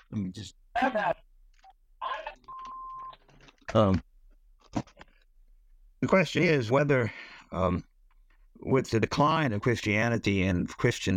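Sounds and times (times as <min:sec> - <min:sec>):
speech: 0:00.1 - 0:01.2, 0:03.7 - 0:04.1, 0:06.0 - 0:07.9, 0:08.6 - 0:11.1
steady electronic phone tone: 0:02.5 - 0:03.2.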